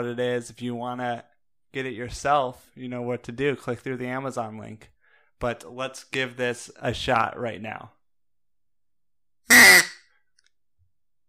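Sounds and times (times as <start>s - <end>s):
speech: 0.0s - 8.0s
duck call imitating a duck quack: 9.5s - 10.0s.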